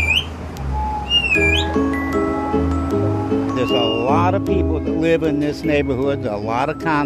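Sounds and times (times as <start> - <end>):
birds chirping and whistling at dusk: 0.0 - 1.8, 3.6 - 4.2
low rumble of street traffic: 0.0 - 7.0
speech: 4.2 - 7.0.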